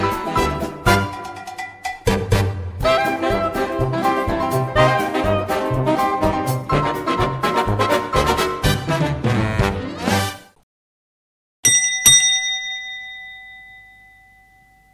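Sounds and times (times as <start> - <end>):
music: 0.0 - 10.6
doorbell ringing with a two-tone ding-dong: 11.6 - 14.9.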